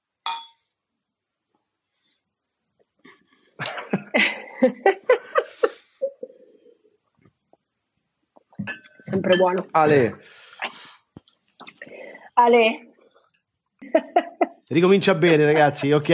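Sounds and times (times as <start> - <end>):
wine glasses clinking in a toast with Spanish albariño: 0.3 - 0.7, 8.6 - 10.2
people laughing: 3.6 - 6.3, 13.8 - 14.6
speech: 3.9 - 4.9, 9.2 - 10.4, 12.4 - 12.9, 14.7 - 16.1.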